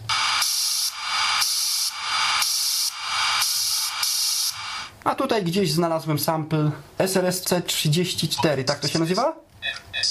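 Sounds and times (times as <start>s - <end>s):
radio hiss from a radiosonde between data frames: 0.0s - 5.0s
speech: 5.0s - 10.0s.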